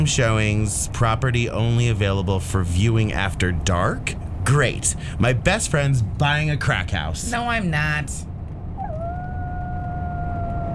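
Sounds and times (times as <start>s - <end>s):
speech: 0.0s - 8.3s
low rumbling background: 0.0s - 10.7s
dogs howling in a neighborhood in Portland: 8.8s - 10.7s.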